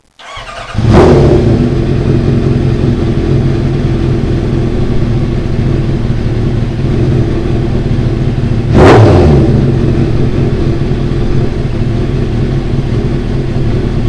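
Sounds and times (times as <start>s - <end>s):
ZX10 motorcycle engine idling: 0.2s - 14.0s.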